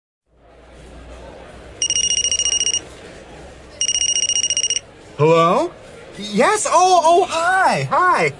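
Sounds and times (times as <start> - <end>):
steady murmur of restaurant noise: 0.3 - 8.3
cell phone ringtone ringing in a restaurant: 1.8 - 2.8, 3.8 - 4.8
speech: 5.2 - 8.3.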